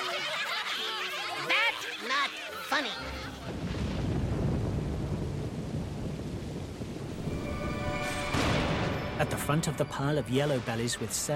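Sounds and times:
laughter: 0.0 - 3.5
heavy rain lashing down and forming huge puddles: 3.1 - 11.3
speech: 9.5 - 11.3.

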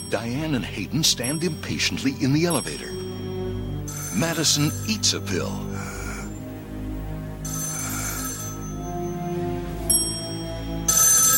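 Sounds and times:
steady low musical hum: 0.0 - 11.3
speech: 0.1 - 3.1, 4.2 - 5.9
telephone ringing in a suite: 1.0 - 5.5, 7.5 - 9.5, 10.1 - 11.3.

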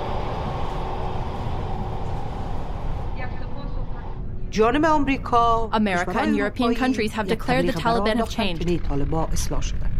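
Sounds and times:
subway train ride heard from inside the car: 0.0 - 4.6
speech: 4.5 - 9.8.

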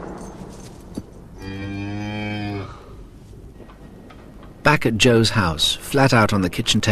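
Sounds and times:
cow mooing: 1.4 - 2.9
speech: 4.7 - 6.8.

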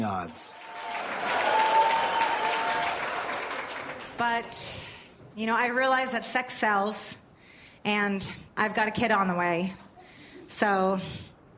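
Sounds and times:
speech: 0.1 - 0.6, 4.2 - 7.2, 7.8 - 9.8, 10.5 - 11.3
woman clapping: 0.6 - 4.4.

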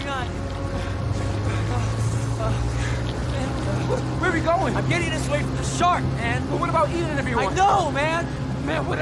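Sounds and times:
outboard motorboat engine droning as boat gains speed: 0.0 - 9.0
speech: 4.4 - 9.0.

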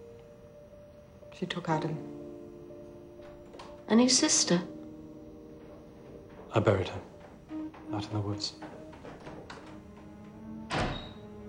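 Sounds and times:
faint steady hum: 0.0 - 11.4
speech: 1.4 - 2.2, 3.9 - 4.7, 6.6 - 7.1, 7.9 - 8.7
heavy wooden door thunk: 3.2 - 4.2, 5.0 - 11.4.

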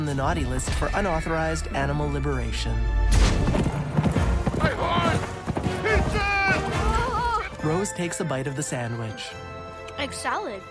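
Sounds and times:
speech: 0.2 - 3.6, 7.6 - 10.6
running horse hooves clip-clopping: 3.5 - 7.8.

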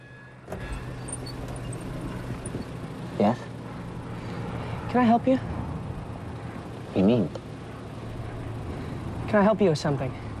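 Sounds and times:
outside road and ambient noise: 0.0 - 10.3
car window winding down: 0.5 - 2.8
speech: 3.2 - 3.5, 4.9 - 5.5, 7.0 - 7.4, 9.3 - 10.2.

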